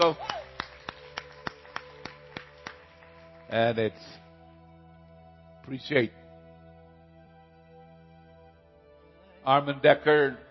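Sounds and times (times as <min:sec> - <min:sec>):
speech: 0:00.0 - 0:00.3, 0:03.5 - 0:04.3, 0:05.7 - 0:06.2, 0:09.5 - 0:10.4
handclaps: 0:00.0 - 0:04.0.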